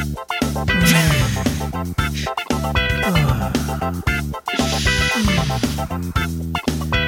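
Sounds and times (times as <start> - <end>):
short upbeat podcast theme song with full instrumentation: 0.4 - 6.8.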